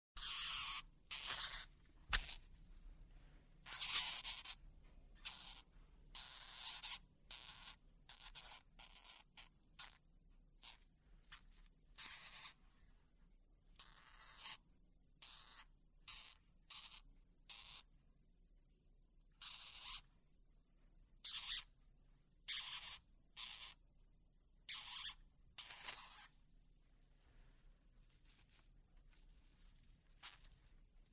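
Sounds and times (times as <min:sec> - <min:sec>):
dwarf hamster busy little squawks: 0:00.2 - 0:02.4, 0:03.6 - 0:04.6, 0:05.2 - 0:10.0, 0:10.6 - 0:10.8, 0:12.0 - 0:12.6, 0:13.8 - 0:14.6, 0:15.2 - 0:17.8, 0:19.4 - 0:20.0, 0:21.2 - 0:21.7, 0:22.5 - 0:23.8, 0:24.7 - 0:26.3.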